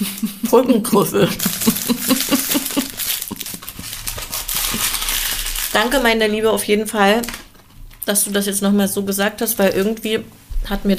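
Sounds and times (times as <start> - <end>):
speech: 0.0 - 2.2, 5.8 - 7.4, 8.0 - 10.9
laughter: 0.0 - 3.7
crackly rustling with crunchy snaps: 1.3 - 10.3.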